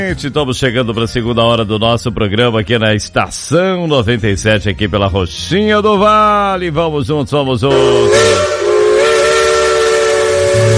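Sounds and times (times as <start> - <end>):
speech: 0.0 - 8.6
steam locomotive whistle from a train climbing through mountains: 7.7 - 10.7.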